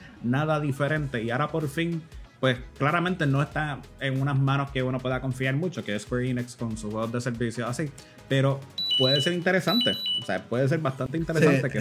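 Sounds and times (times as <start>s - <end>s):
speech: 0.2s - 11.7s
thin high electronic alarm tone: 8.8s - 10.4s.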